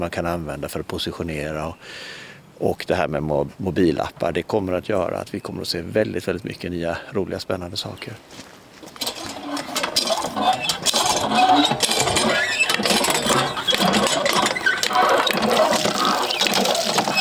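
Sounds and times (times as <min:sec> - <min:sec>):
speech: 0:00.0 - 0:08.5
faint mechanical rattling of a water pump: 0:08.8 - 0:17.1
water gushing from a water pump: 0:09.0 - 0:17.1.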